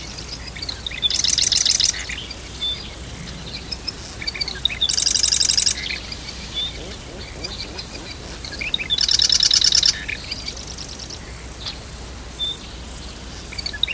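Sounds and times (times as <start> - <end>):
constant hiss: 0.0 - 13.9
marsh wren singing: 0.3 - 11.2.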